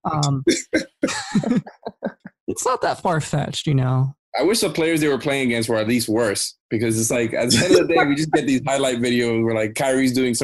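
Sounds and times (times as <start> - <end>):
speech: 0.0 - 1.7, 2.6 - 10.4
person fake coughing: 0.5 - 1.9, 7.4 - 8.7
laughter: 0.5 - 2.2, 4.4 - 10.4.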